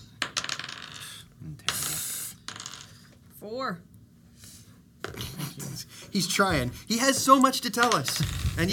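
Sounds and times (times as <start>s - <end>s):
dice clattering across a hard tabletop: 0.2s - 3.2s, 7.1s - 8.7s
speech: 3.4s - 3.9s, 6.1s - 8.7s.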